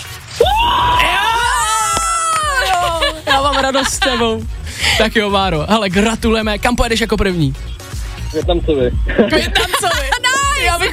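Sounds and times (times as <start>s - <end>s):
person screaming joyfully celebrating winning an electric scooter: 0.4s - 3.6s
laughter: 2.2s - 5.2s, 9.0s - 10.9s
speech: 3.6s - 7.7s, 8.3s - 10.1s.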